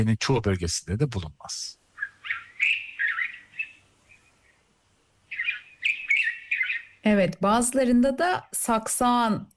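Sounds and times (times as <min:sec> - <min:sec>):
speech: 0:00.0 - 0:01.8, 0:07.1 - 0:09.5
white-spectacled bulbul chattering: 0:01.9 - 0:04.5, 0:05.3 - 0:07.1.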